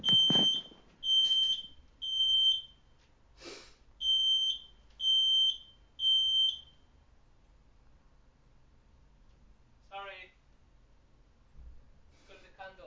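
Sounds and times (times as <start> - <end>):
thump: 0.0 - 0.7, 11.6 - 11.8
smoke alarm set off by a candle beeping: 0.0 - 2.9, 4.0 - 6.9.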